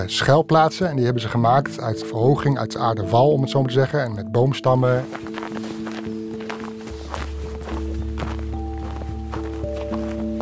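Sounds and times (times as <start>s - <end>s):
speech: 0.0s - 5.4s
footsteps crunching across a snowy landscape in sunshine: 4.8s - 10.4s.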